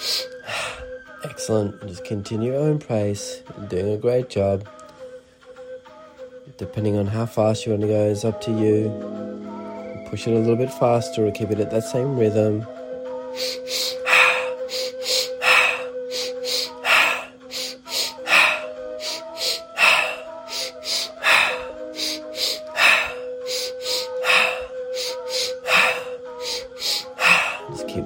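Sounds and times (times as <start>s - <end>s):
speech: 1.5s - 4.8s, 6.6s - 12.8s
quick nasal sniffs: 13.4s - 27.7s
breath out through the mouth: 13.4s - 27.8s.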